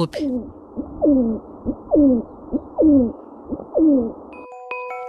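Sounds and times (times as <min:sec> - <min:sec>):
Hill Pigeon giving a short low coo: 0:00.1 - 0:04.2.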